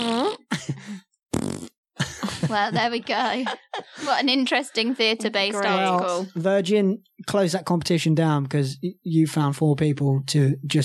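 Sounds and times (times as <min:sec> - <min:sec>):
vocal imitation of fart noises: 0:00.0 - 0:00.5, 0:01.3 - 0:01.8
laughter: 0:02.0 - 0:05.6
speech: 0:02.5 - 0:10.8.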